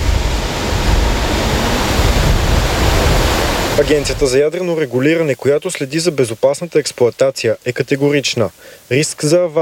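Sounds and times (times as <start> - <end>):
low rumbling undertone of rushing water: 0.0 - 4.4
water rushing at a pumping station canal: 0.0 - 9.6
speech: 3.8 - 9.6.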